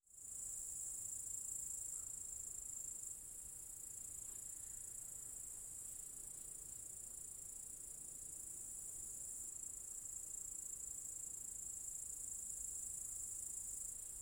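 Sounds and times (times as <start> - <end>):
cicadas droning in an apple tree orchard: 0.1 - 14.2
soft low background noise: 0.1 - 14.2.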